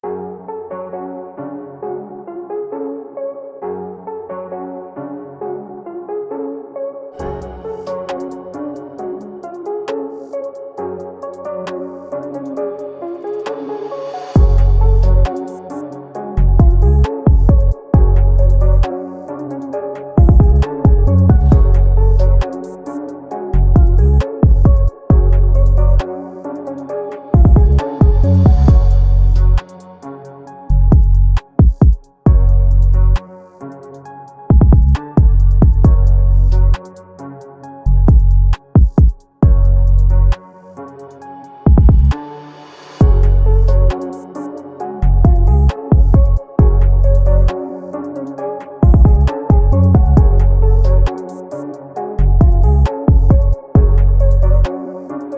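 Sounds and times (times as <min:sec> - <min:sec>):
UK drill trap beat: 0:07.2 - 0:13.5, 0:14.4 - 0:37.3, 0:37.9 - 0:42.2, 0:43.0 - 0:55.3.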